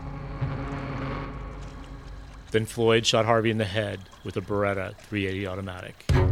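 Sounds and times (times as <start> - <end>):
outboard motor droning on a boat: 0.0 - 3.8
speech: 2.5 - 6.2.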